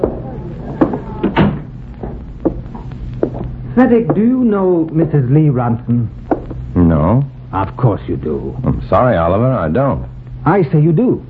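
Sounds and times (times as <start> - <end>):
wooden door swinging shut: 0.0 - 2.2
speech: 3.8 - 6.2, 6.8 - 11.2.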